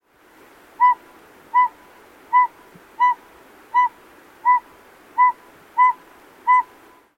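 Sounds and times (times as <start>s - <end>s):
low even background hiss: 0.0s - 7.1s
Northern pygmy owl giving mellow whistled toots: 0.8s - 3.2s, 3.8s - 4.6s, 5.2s - 6.7s.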